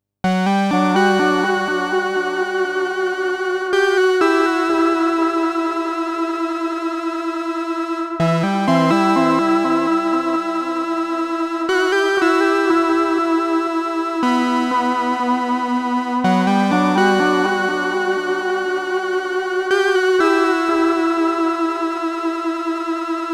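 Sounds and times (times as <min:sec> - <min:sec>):
Moog synthesizer with delay effect: 0:00.4 - 0:23.3.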